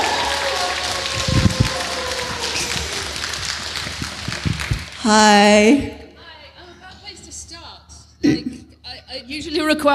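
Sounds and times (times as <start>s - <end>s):
faint whoops: 0.0s - 3.2s
audience applause: 0.0s - 5.2s
speech: 5.0s - 6.0s, 9.2s - 9.9s.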